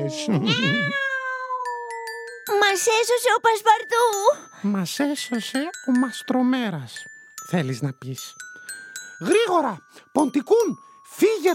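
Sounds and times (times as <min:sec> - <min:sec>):
cat meowing: 0:00.0 - 0:02.3
speech: 0:00.1 - 0:01.1, 0:02.7 - 0:08.4, 0:09.2 - 0:11.5.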